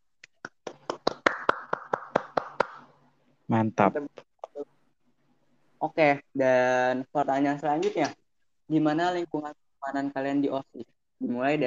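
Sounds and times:
hand clapping from a few people: 0.2 - 3.0
speech: 3.5 - 4.2, 5.8 - 11.6.

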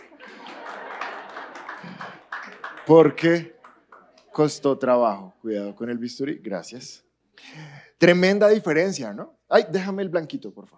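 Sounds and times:
hands clapping: 0.0 - 4.6
laughter: 0.0 - 6.0
speech: 2.9 - 3.5, 4.4 - 10.7.

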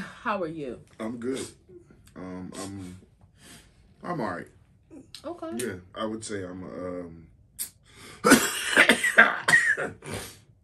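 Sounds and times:
speech: 0.2 - 7.3, 9.2 - 10.4
person with a slight cough coughing: 8.2 - 10.4.

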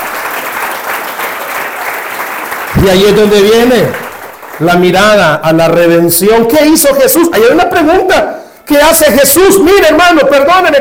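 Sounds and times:
church congregation applauding: 0.0 - 5.3
speech: 2.8 - 10.7.

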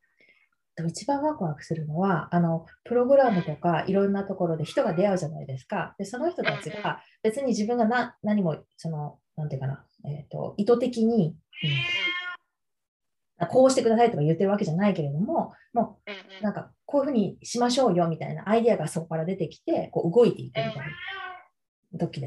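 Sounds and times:
speech: 0.8 - 12.2, 13.4 - 21.2, 21.9 - 22.2
cat meowing: 6.5 - 6.9, 11.6 - 12.4, 16.1 - 16.4, 20.6 - 21.6.

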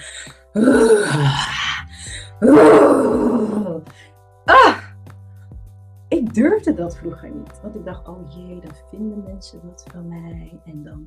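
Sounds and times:
speech: 0.5 - 1.6, 2.4 - 4.7, 6.4 - 11.0
long loud raw primal screams: 0.6 - 1.8, 2.4 - 3.8, 4.5 - 4.9.

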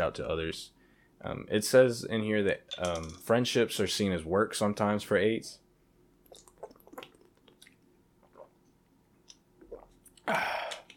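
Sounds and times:
speech: 0.0 - 5.6, 10.3 - 10.5
person sipping water: 6.2 - 10.9
breathy gulp or exhale: 9.7 - 10.9.

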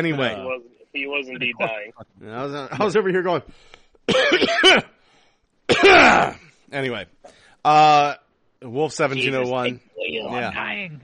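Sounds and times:
speech: 0.0 - 5.0, 5.7 - 11.0
person coughing: 4.1 - 4.9, 5.7 - 6.5.

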